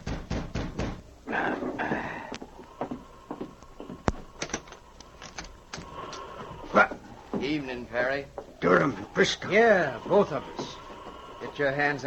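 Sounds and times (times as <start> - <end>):
knocking on a wooden cabin door: 0.0 - 1.1
creaks: 1.3 - 12.0
rattling handling noises: 3.8 - 6.3
speech: 6.8 - 10.8, 11.6 - 12.0.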